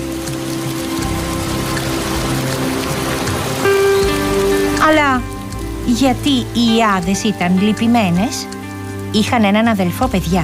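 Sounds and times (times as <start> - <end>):
low sustained droning hum: 0.0 - 10.4
raindrops pattering: 0.0 - 10.4
speech: 5.9 - 10.4.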